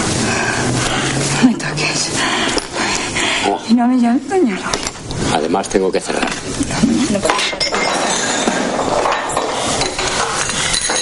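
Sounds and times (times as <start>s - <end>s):
busy noisy background: 0.0s - 10.9s
speech: 3.7s - 8.0s
glass and crockery clinking: 7.2s - 10.9s
plate thrown from a bar counter clattering: 7.2s - 10.9s.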